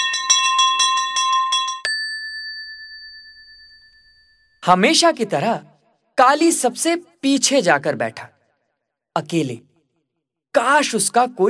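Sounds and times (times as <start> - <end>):
school bell ringing: 0.0 - 4.8
speech: 4.7 - 8.4, 9.2 - 9.7, 10.6 - 11.4.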